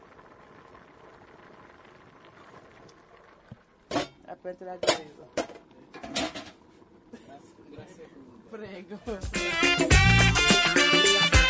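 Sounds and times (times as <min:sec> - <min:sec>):
sauce boiling in a pot: 0:00.0 - 0:08.9
speech: 0:04.4 - 0:05.6, 0:07.4 - 0:10.6.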